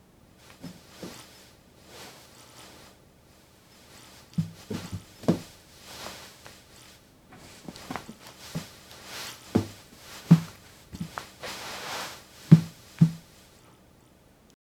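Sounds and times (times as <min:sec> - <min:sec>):
gentle rustling of clothing fabric: 0:03.8 - 0:13.5.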